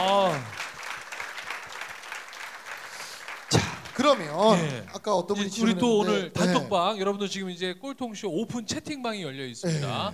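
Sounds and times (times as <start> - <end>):
audience applause for a guest: 0.0 - 5.0
speech: 3.5 - 10.1.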